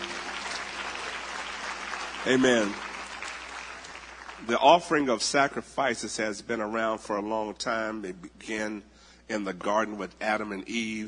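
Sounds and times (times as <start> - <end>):
crowd of people clapping their hands: 0.0 - 5.1
speech: 2.2 - 2.9, 4.4 - 11.0.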